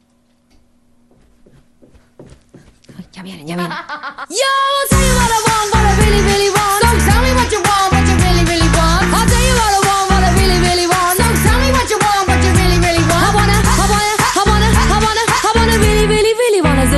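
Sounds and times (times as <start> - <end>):
speech: 3.2 - 6.6
laughter: 3.4 - 4.4
upbeat 1990s girl-group pop song with beat, synths and group vocals: 4.9 - 16.9.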